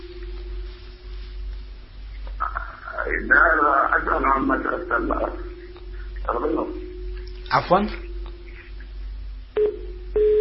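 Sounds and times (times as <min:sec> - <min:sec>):
electronic telephone tone bursts: 0:00.0 - 0:01.3, 0:02.4 - 0:10.4
telephone line hum with faint steady tone: 0:00.0 - 0:01.6, 0:02.3 - 0:10.4
speech: 0:03.1 - 0:05.5, 0:06.3 - 0:06.8, 0:07.5 - 0:08.0.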